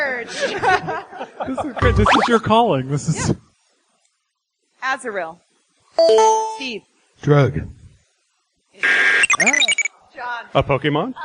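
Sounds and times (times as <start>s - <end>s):
laughter: 0.2s - 1.8s
speech: 0.2s - 3.5s, 4.8s - 5.4s, 6.0s - 7.8s, 8.8s - 11.2s
bright warbling electronic beeps and chirps: 1.8s - 2.4s, 8.8s - 9.9s
game show buzzer: 1.8s - 2.4s, 8.8s - 9.9s.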